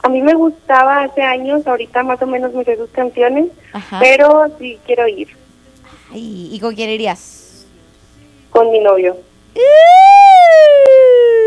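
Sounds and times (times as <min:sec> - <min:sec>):
speech: 0:00.0 - 0:05.4, 0:06.1 - 0:07.4, 0:08.6 - 0:10.7
ambulance siren wailing: 0:09.6 - 0:11.4.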